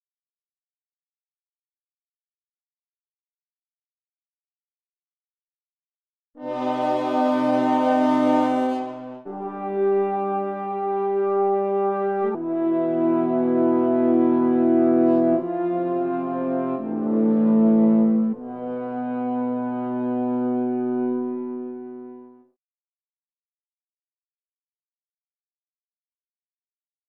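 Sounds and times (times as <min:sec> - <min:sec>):
melancholy horn signal: 0:06.4 - 0:22.5.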